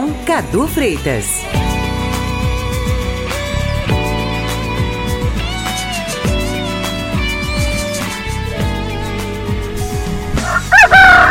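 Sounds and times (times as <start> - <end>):
harmonic music: 0.0 - 11.2
speech: 0.2 - 1.6
rooster in Rio de Janeiro crowing: 10.4 - 11.2.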